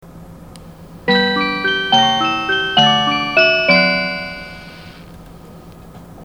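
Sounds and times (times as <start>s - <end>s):
chime: 1.1s - 5.1s.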